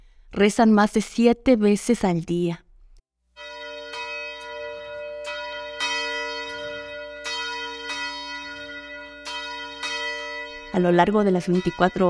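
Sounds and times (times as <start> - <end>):
speech: 0.3 - 2.6, 10.8 - 12.0
convent church bell ringing: 3.4 - 12.0.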